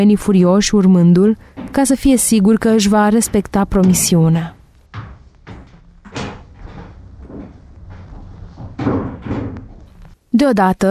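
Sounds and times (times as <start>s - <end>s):
speech: 0.0s - 4.6s, 10.4s - 10.8s
door hinges rattling: 1.4s - 10.2s.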